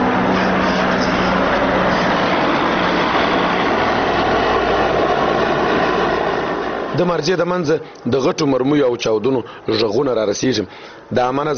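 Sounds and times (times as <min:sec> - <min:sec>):
military helicopters and large surveillance aircraft circling over Marjah: 0:00.0 - 0:08.0
speech: 0:07.0 - 0:11.5.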